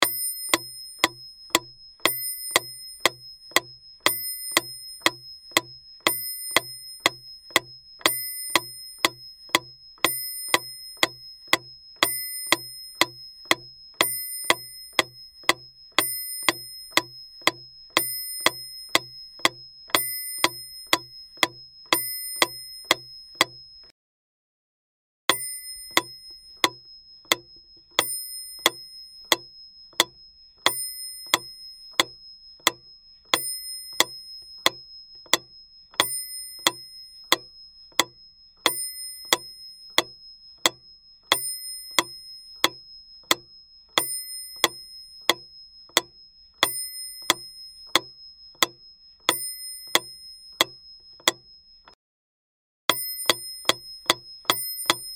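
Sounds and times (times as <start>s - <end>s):
metronome ticking: 0.0s - 23.8s, 25.3s - 52.0s, 52.9s - 55.1s.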